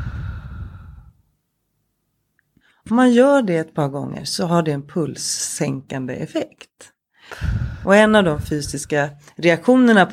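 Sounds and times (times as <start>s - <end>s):
slow deliberate breathy exhale: 0.0s - 1.2s, 7.2s - 7.9s
speech: 2.9s - 10.1s.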